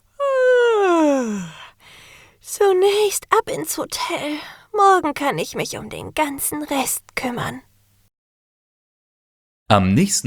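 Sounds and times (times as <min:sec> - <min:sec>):
woman yawning: 0:00.1 - 0:01.8
speech: 0:02.4 - 0:07.7, 0:09.7 - 0:10.2.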